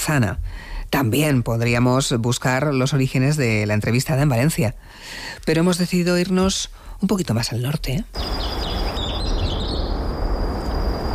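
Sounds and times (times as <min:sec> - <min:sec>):
speech: 0:00.0 - 0:08.4
birds chirping outside an open window on the outskirts of a city: 0:08.2 - 0:11.1.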